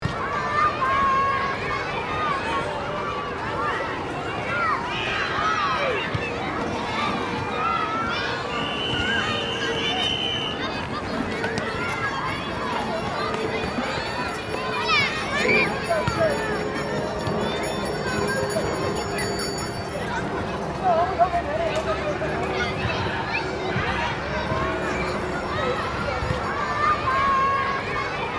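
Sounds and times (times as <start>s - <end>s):
kids shouting and playing in a busy playground: 0.0s - 28.3s.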